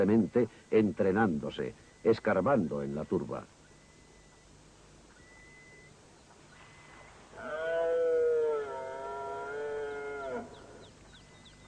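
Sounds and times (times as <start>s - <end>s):
speech: 0.0s - 3.6s
deer stag roaring during the rut: 7.3s - 10.8s.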